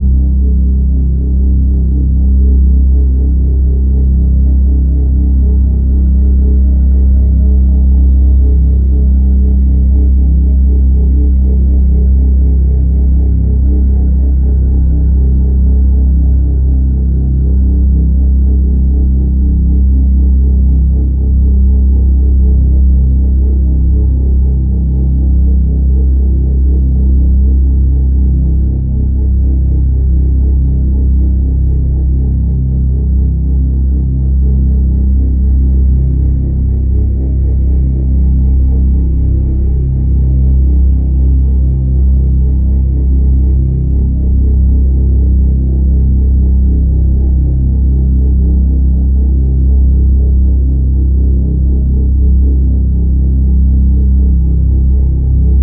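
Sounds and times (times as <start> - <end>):
dark ambient pad with horror tension elements: 0.0 - 55.6.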